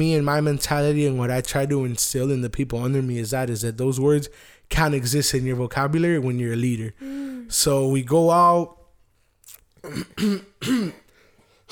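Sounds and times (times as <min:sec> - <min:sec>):
speech: 0:00.0 - 0:08.8, 0:09.8 - 0:11.0
person clearing throat: 0:09.8 - 0:11.1
person coughing: 0:09.8 - 0:11.1.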